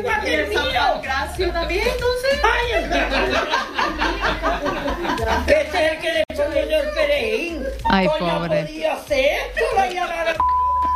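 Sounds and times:
lively speech: 0:00.0 - 0:10.5
laughter: 0:02.2 - 0:07.0
steady pure electronic censor beep: 0:10.4 - 0:10.9.

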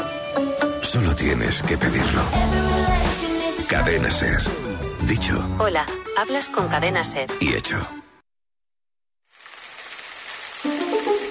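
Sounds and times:
speech: 0:00.4 - 0:08.0
rain falling on a surface: 0:09.3 - 0:11.3.

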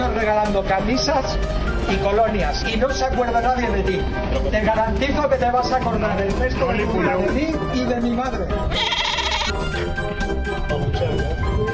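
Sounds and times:
speech: 0:00.2 - 0:11.4
goat bleating: 0:08.7 - 0:09.6.

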